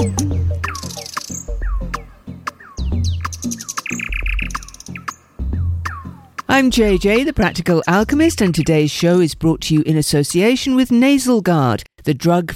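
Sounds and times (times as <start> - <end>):
nightingale singing: 0.0 - 9.2
speech: 6.5 - 12.5.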